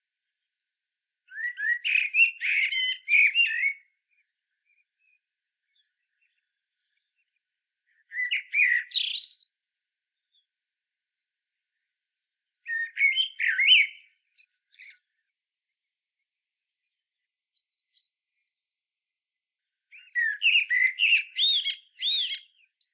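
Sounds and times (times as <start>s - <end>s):
Common blackbird Turdus merula singing: 1.3s - 9.6s, 12.7s - 15.2s, 17.6s - 18.2s, 19.9s - 22.9s.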